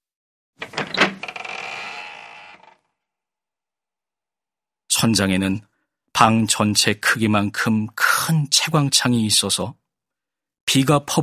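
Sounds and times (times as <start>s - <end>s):
stiff handle of a street-facing door rattling and clunking: 0.6s - 2.8s
speech: 5.0s - 9.8s, 10.7s - 11.2s.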